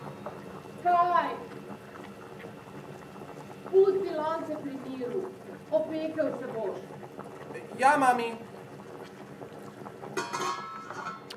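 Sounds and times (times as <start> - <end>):
speech: 3.7 - 8.5
kitchen pots and dishes clinking and clattering as they are handled: 10.0 - 11.3.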